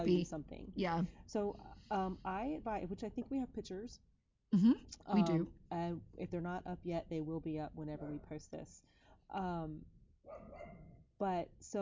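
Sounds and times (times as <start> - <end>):
speech: 0.0 - 11.8
dog giving a loud drawn-out bark: 10.3 - 10.9.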